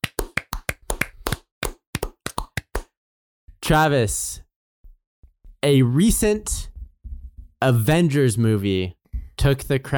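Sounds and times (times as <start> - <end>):
hosts clapping: 0.0 - 2.9
speech: 3.7 - 4.4, 5.6 - 6.7, 7.6 - 9.9.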